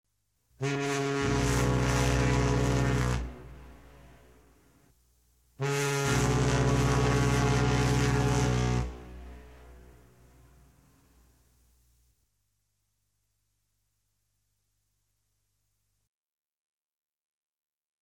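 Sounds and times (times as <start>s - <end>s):
ship whistles on departure: 0.6s - 3.5s, 5.6s - 9.4s.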